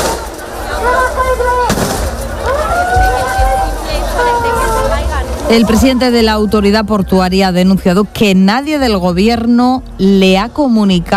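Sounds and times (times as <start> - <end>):
agitated crowd shouting: 0.0 - 7.6
police gunshot fired in the air: 1.7 - 2.2
speech: 5.5 - 11.1.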